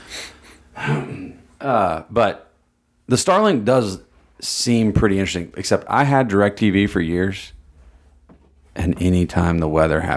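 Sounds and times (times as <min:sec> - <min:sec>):
person clearing throat into the microphone: 0:00.8 - 0:01.4
speech: 0:00.8 - 0:02.5, 0:03.1 - 0:07.6, 0:08.8 - 0:10.1.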